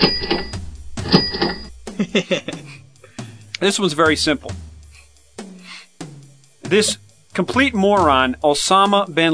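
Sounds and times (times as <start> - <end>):
speech: 0.0 - 0.3, 2.1 - 2.4, 3.6 - 4.6, 6.7 - 9.3
cash register sound effect bell: 0.0 - 1.7
laughter: 1.9 - 2.8.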